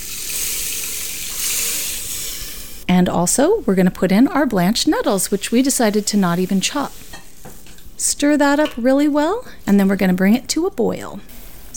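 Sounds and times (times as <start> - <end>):
vegetable stock poured into a soup pot with rice and dandelion greens: 0.0 - 2.7
speech: 2.9 - 7.0, 8.0 - 11.7.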